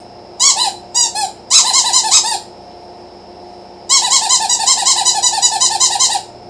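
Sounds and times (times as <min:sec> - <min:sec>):
squeaky toy: 0:00.4 - 0:02.5, 0:03.9 - 0:06.3.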